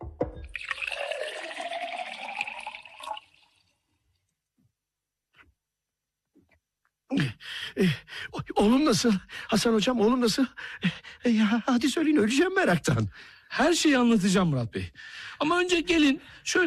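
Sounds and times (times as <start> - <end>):
water poured into a drinking glass: 0.4 - 4.0
speech: 7.2 - 16.6.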